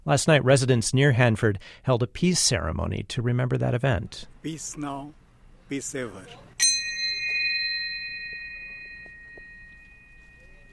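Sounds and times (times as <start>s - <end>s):
speech: 0.1s - 6.5s
bell from Nagasaki rung at a peace ceremony near the Hanford nuclear site: 6.6s - 10.7s.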